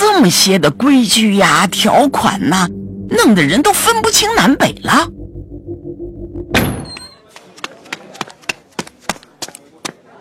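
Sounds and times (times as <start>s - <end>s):
speech: 0.2s - 5.2s
low steady hum: 0.2s - 6.8s
door banging open: 6.4s - 7.1s.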